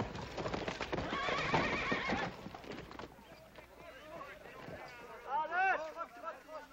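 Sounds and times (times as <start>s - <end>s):
heavy rapid hoofbeats of a galloping horse: 0.0s - 5.5s
loud wavering horse whinny: 0.9s - 2.4s.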